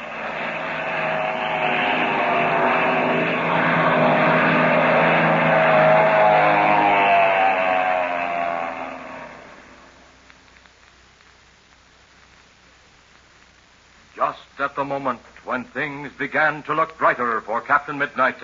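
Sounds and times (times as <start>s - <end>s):
propeller airplane engine roaring overhead: 0.0s - 9.8s
speech: 15.0s - 18.4s.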